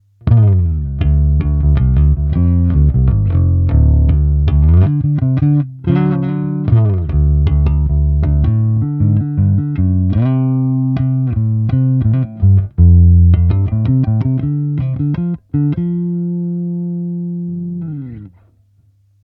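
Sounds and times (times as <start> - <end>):
clean guitar tone through cabinet simulator: 0.0 - 18.4.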